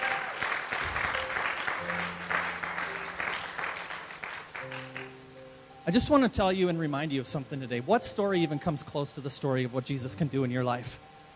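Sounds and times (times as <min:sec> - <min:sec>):
crowd clapping in a large room: 0:00.0 - 0:05.2
speech: 0:05.9 - 0:11.1.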